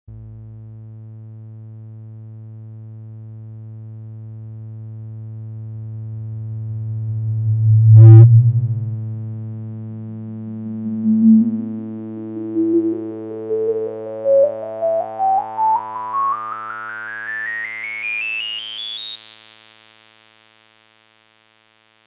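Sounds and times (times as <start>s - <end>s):
Casio XW-P1 synthesizer with band-pass filter at max resonance and slow envelope: 6.6s - 18.0s.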